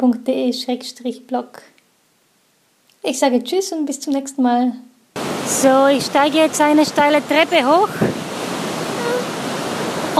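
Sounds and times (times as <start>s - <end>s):
speech: 0.0s - 1.7s, 3.0s - 8.2s
waterfall rushing: 5.2s - 10.1s.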